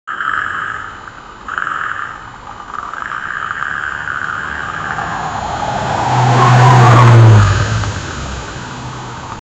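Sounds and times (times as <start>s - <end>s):
Ferrari sports car: 3.0s - 9.4s.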